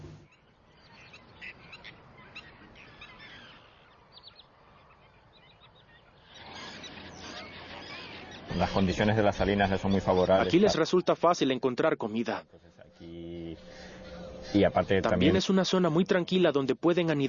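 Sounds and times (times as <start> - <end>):
flock of flamingos calling across salt pans of a river delta: 0.3 - 10.8, 12.9 - 15.4
speech: 8.6 - 13.1, 14.5 - 17.2.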